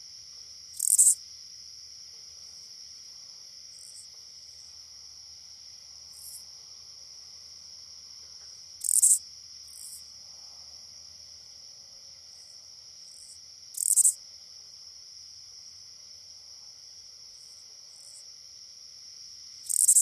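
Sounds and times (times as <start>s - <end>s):
steady high insect drone: 0.0s - 19.9s
oblong-winged katydid singing in North America: 0.8s - 1.2s, 8.8s - 9.2s.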